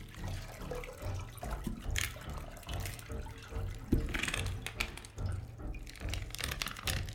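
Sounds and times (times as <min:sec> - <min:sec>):
water splashing and trickling as something soaked is wrung out with a crank: 0:00.0 - 0:07.1.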